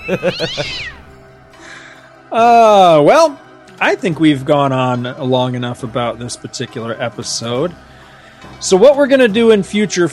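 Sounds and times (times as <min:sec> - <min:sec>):
speech: 0:00.0 - 0:01.0, 0:02.3 - 0:10.1
cat meowing: 0:00.2 - 0:01.0.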